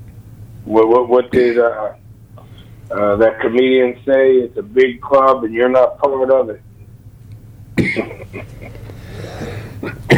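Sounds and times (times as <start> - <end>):
low steady hum: 0.0 - 10.1
speech: 0.6 - 2.0, 2.9 - 6.6, 7.8 - 8.8
person coughing: 7.8 - 8.5, 9.3 - 10.1
laughter: 7.9 - 9.0.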